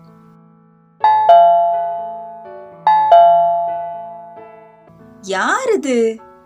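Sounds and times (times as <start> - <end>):
doorbell ringing in a ding-dong pattern: 1.0 - 4.6
speech: 5.2 - 6.3.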